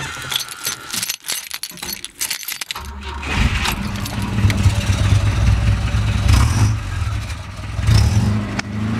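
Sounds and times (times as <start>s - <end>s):
keys jingling: 0.0s - 5.1s
classic Volvo Amazon car engine starting and idling: 2.8s - 8.9s.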